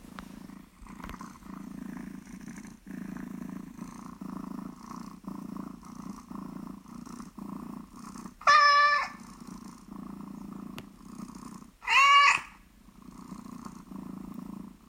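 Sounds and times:
cat purring: 0.0s - 14.8s
cat meowing: 8.4s - 9.2s, 11.8s - 12.6s.

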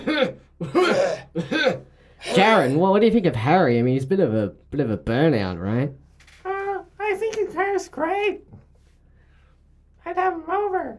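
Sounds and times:
throat clearing: 0.0s - 2.7s
speech: 2.4s - 6.0s, 7.8s - 8.5s, 10.0s - 10.9s.

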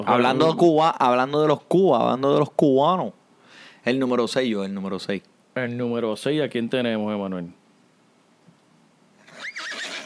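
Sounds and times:
speech: 0.0s - 3.2s, 3.8s - 7.6s
horse neighing: 9.2s - 10.0s.

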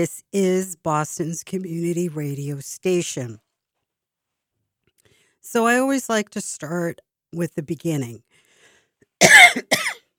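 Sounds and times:
speech: 0.0s - 3.4s, 5.4s - 8.3s
harsh coughs: 9.2s - 10.1s.

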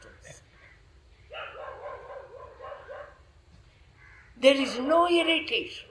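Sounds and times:
dog barking with yelping barks: 1.3s - 3.3s, 4.6s - 5.8s
speech: 4.4s - 5.8s.

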